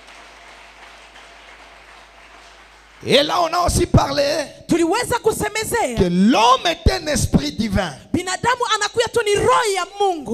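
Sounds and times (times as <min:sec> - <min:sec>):
congregation applauding in a church service: 0:00.0 - 0:04.2
speech: 0:03.0 - 0:10.3.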